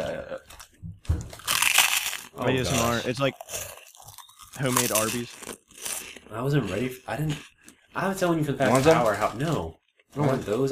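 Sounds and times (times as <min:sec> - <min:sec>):
crunching on crinkle cut fries from a discount market: 0:01.4 - 0:07.8
chewing noises: 0:01.4 - 0:08.0
speech: 0:02.4 - 0:03.7, 0:04.6 - 0:05.6, 0:06.3 - 0:10.7.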